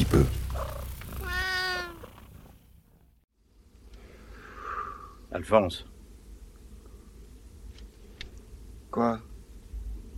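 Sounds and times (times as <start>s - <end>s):
speech: 0.0s - 0.4s, 5.3s - 5.9s, 9.0s - 9.3s
hiss: 0.0s - 10.1s
person imitating cat meow: 1.2s - 2.0s.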